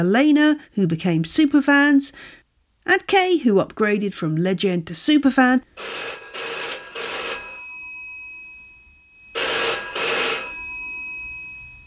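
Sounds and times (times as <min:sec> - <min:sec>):
speech: 0:00.0 - 0:06.5
telephone ringing in an office: 0:05.8 - 0:11.8.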